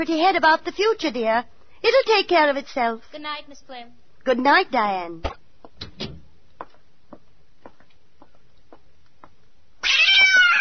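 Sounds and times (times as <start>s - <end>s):
speech: 0.0s - 5.4s
brief thumps: 5.2s - 6.3s
cat meowing: 9.8s - 10.5s.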